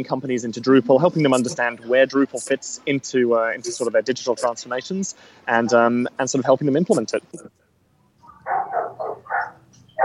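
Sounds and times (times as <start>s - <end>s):
speech: 0.0s - 7.6s
dogs barking: 8.2s - 10.0s.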